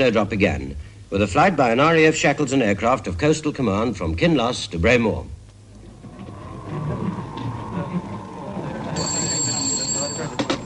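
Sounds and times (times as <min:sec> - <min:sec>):
speech: 0:00.0 - 0:05.4
faint murmur: 0:05.5 - 0:10.6
steady low rumble: 0:05.7 - 0:09.0
telephone bell ringing in the Kinloss duty room: 0:08.9 - 0:10.6.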